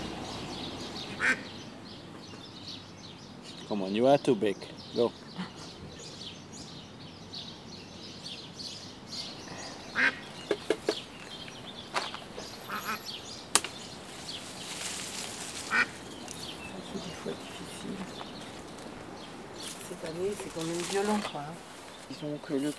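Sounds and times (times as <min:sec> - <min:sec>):
steady outdoor hiss: 0:00.0 - 0:22.7
wild ducks quacking: 0:00.8 - 0:01.6, 0:09.2 - 0:22.7
speech: 0:01.2 - 0:01.6, 0:03.7 - 0:05.5, 0:22.2 - 0:22.7.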